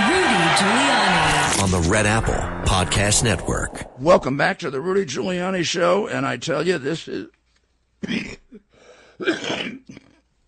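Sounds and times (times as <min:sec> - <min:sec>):
speech: 0:00.6 - 0:00.9, 0:01.8 - 0:07.4, 0:08.0 - 0:08.6, 0:09.2 - 0:10.1
man coughing: 0:08.0 - 0:10.2
man clearing his throat: 0:08.0 - 0:10.3.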